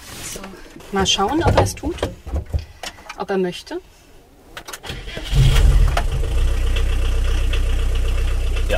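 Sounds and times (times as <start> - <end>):
speech: 0.4 - 2.2, 3.2 - 4.0
old 70 horsepower turbo-diesel bus engine starting and idling: 4.8 - 8.7.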